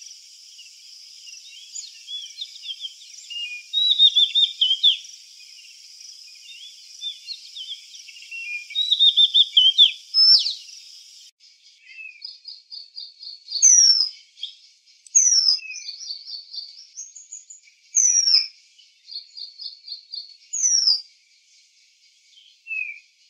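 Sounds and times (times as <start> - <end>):
Oriental magpie-robin Copsychus saularis song: 0.0 - 23.2.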